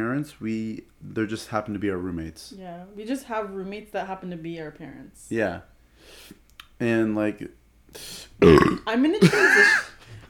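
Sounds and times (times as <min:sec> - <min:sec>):
speech: 0:00.0 - 0:10.2
soft breathy hiss: 0:05.8 - 0:06.4, 0:07.9 - 0:08.4
loud throaty burp: 0:08.4 - 0:09.9.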